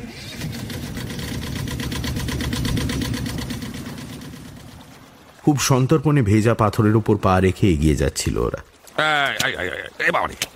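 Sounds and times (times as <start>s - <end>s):
hired motorboat engine leaving an island: 0.0s - 6.6s
speech: 5.5s - 10.5s.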